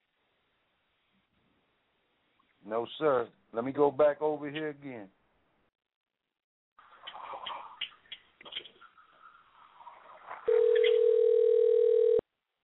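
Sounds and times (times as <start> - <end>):
speech: 2.6 - 5.2
telephone line ringing tone during a call: 10.5 - 12.2.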